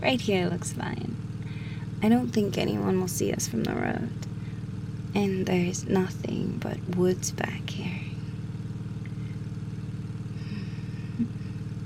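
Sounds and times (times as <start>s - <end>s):
speech: 0.0s - 1.1s, 2.0s - 4.3s, 5.2s - 8.0s
car engine idling: 0.0s - 11.8s.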